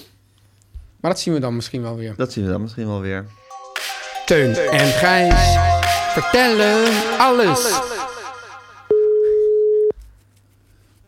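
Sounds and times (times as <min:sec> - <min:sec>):
speech: 0:01.0 - 0:03.4, 0:04.3 - 0:07.9
telephone busy signal from a failed call: 0:08.9 - 0:09.9.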